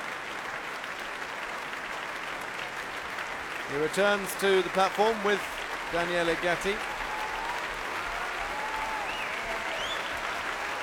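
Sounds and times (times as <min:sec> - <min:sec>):
large concert audience applause after a violin concerto: 0:00.0 - 0:10.8
speech: 0:03.7 - 0:06.9
faint whistles and cheers: 0:06.8 - 0:10.8.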